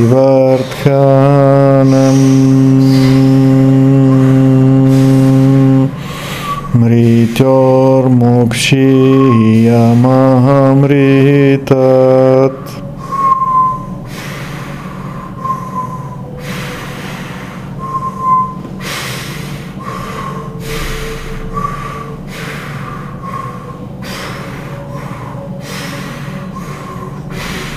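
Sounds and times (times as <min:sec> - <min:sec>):
speech: 0:00.0 - 0:03.9, 0:07.4 - 0:12.8
deep rhythmic breathing during a breathing exercise: 0:00.0 - 0:27.7.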